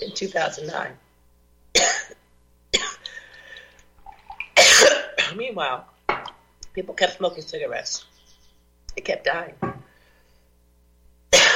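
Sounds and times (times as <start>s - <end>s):
speech: 0.0s - 1.1s, 4.8s - 5.9s, 6.8s - 8.1s, 9.0s - 9.7s
loud harsh cough from an ice cream sensitivity: 1.8s - 2.2s, 4.6s - 5.3s, 11.4s - 11.5s.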